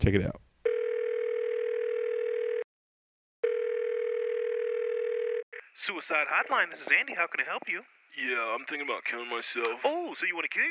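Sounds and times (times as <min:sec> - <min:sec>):
speech: 0:00.0 - 0:00.4, 0:05.8 - 0:10.6
telephone dial tone: 0:00.7 - 0:02.7, 0:03.4 - 0:05.5.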